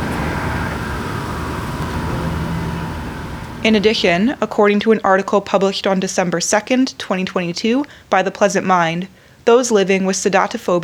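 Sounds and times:
street traffic with cars and trucks: 0.0 - 6.0
speech: 3.6 - 10.8.

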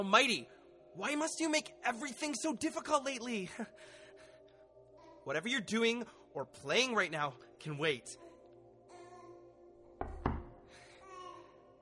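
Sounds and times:
speech: 0.0 - 4.0, 5.2 - 8.2
heavy knocks on a door: 10.0 - 10.6.

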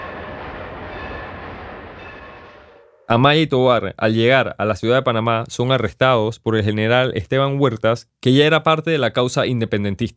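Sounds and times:
faint metallic squeals of train on rails: 0.0 - 3.1
train rumbling on rails: 0.0 - 3.2
speech: 3.1 - 10.1.

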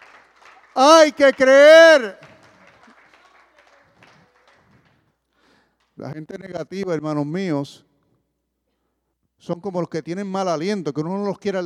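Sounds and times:
audience applauding: 0.0 - 6.0
speech: 0.8 - 2.3, 6.0 - 7.9, 9.4 - 11.6.

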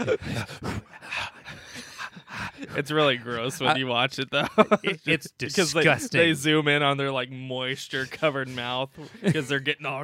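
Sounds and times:
speech: 0.0 - 1.0, 2.6 - 10.0
heavy rapid panting: 0.0 - 2.9
laughter: 0.0 - 6.3, 9.0 - 9.7.

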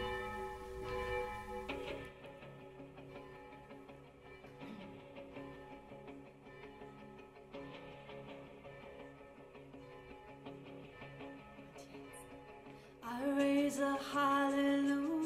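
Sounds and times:
church bells pealing: 0.0 - 2.1
speech: 13.8 - 15.1.

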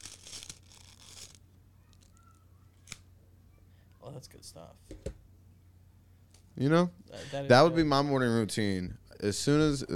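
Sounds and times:
paper packet torn open: 0.0 - 1.4
rustling and shuffling of packet contents being sifted: 0.0 - 3.0
speech: 4.1 - 5.3, 6.6 - 9.9.

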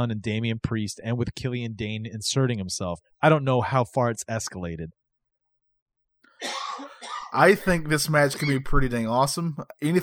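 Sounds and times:
speech: 0.0 - 5.0, 7.3 - 10.0
man's single harsh cough: 6.4 - 7.4.

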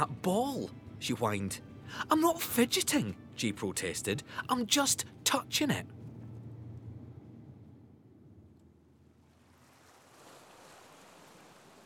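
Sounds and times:
speech: 0.0 - 6.0
gentle breeze with low wind rumble: 0.0 - 11.8
ocean waves at a beach: 9.1 - 11.8.

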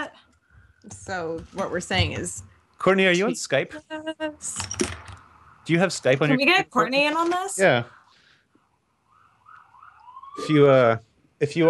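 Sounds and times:
speech: 0.8 - 5.0, 5.6 - 8.0, 10.4 - 11.6
ambulance siren passing along a street: 5.3 - 6.1, 6.8 - 11.0.

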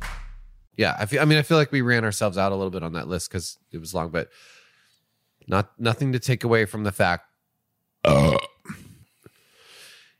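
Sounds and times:
speech: 0.8 - 4.6, 5.4 - 7.3, 8.0 - 8.4
man burping loudly and deeply: 8.0 - 9.0
faint breathy exhale: 8.8 - 10.1.

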